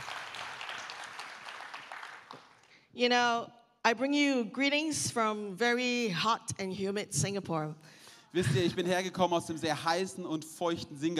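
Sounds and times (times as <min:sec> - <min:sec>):
audience applause at a bilingual talk: 0:00.0 - 0:02.7
speech: 0:03.0 - 0:11.1.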